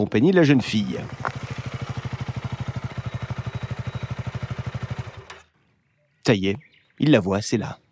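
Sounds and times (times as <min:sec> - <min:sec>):
speech: 0:00.0 - 0:01.4, 0:06.3 - 0:07.8
motorcycle engine chugging: 0:00.4 - 0:05.6.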